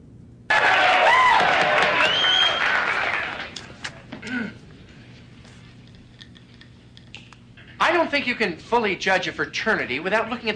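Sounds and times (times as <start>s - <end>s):
whoops and shouts: 0.5s - 3.4s
applause at a hearing: 0.5s - 3.8s
crowd cheering at a hearing: 0.5s - 4.0s
speech: 8.1s - 10.5s.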